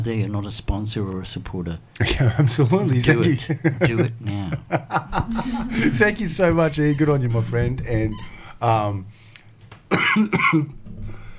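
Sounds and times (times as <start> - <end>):
speech: 0.0 - 9.2, 9.9 - 10.8
laughter: 3.1 - 6.4
person coughing: 9.9 - 10.8.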